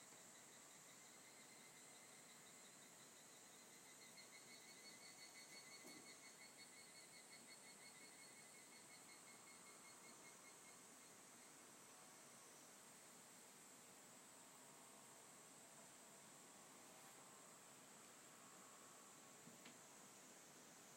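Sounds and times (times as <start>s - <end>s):
constant high insect hiss: 0.0s - 20.9s
evening cicadas calling a rapid ringing kana-kana trill: 0.1s - 12.7s.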